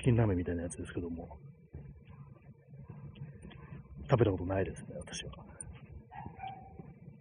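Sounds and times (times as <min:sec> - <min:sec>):
speech: 0:00.1 - 0:01.6, 0:04.1 - 0:05.5
dog barking and yipping: 0:06.1 - 0:06.9.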